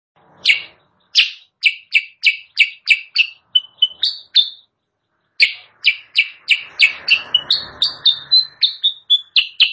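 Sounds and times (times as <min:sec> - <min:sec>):
Sooty-headed bulbul song: 0:00.2 - 0:09.7
noise: 0:00.2 - 0:09.7.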